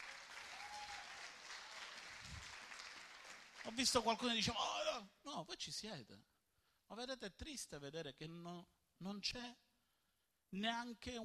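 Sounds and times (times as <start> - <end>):
crowd applauding in a room: 0.0 - 4.3
speech: 3.6 - 6.3, 6.9 - 9.6, 10.5 - 11.2.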